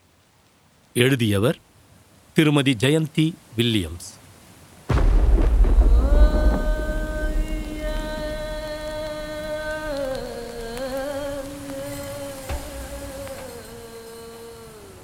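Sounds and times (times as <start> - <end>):
speech: 1.0 - 1.7, 2.4 - 4.2
heavy rain falling: 3.2 - 15.0
deep boom: 4.9 - 11.5.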